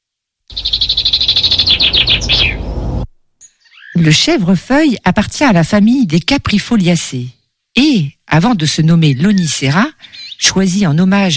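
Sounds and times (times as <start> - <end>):
Eurasian blackbird singing loudly in a garden: 0.5 - 2.8, 3.4 - 4.2, 8.9 - 10.8
speech: 4.0 - 11.3.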